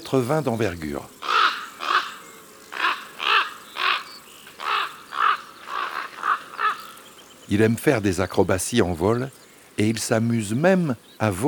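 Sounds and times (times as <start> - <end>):
common raven calling: 0.0 - 8.1
speech: 0.1 - 1.2, 7.5 - 11.4.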